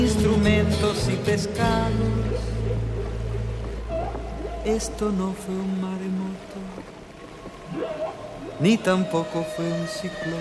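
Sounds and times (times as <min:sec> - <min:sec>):
low murky rumble: 0:00.0 - 0:10.3
speech: 0:01.4 - 0:02.5, 0:04.6 - 0:07.0, 0:07.7 - 0:10.3
whale call of moaning tones: 0:02.3 - 0:10.3.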